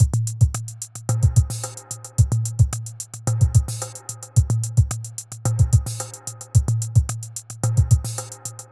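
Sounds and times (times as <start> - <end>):
R&B drum kit: 0.0 - 8.6.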